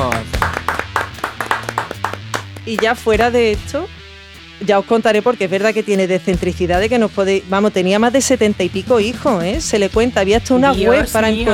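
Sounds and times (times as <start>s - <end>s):
loud rhythmic clapping: 0.0s - 3.7s
speech: 2.7s - 4.0s, 4.6s - 11.5s
sustained tonal voice or music: 10.5s - 11.5s.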